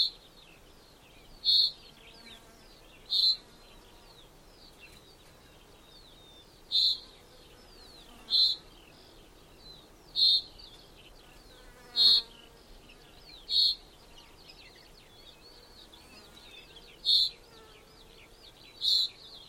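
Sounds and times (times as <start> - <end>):
faint background bird twittering: 0.0 - 19.4
common chaffinch calls: 1.3 - 3.5, 6.0 - 7.1, 8.2 - 8.8, 10.1 - 10.8, 13.3 - 13.9, 16.6 - 17.6, 18.7 - 19.4.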